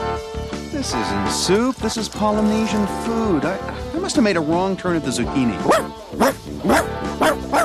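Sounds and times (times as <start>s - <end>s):
speech: 0.8s - 7.6s
dog barking: 5.7s - 7.6s.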